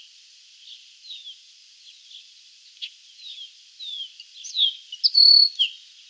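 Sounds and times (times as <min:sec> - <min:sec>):
baywing Agelaioides badius chirps and whistles: 0:03.8 - 0:05.8.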